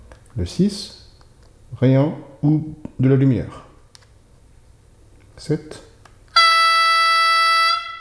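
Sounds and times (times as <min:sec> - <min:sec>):
speech: 0:00.4 - 0:01.0, 0:01.7 - 0:03.6, 0:05.4 - 0:05.9
high-pitched vehicle horn blast: 0:06.4 - 0:08.0.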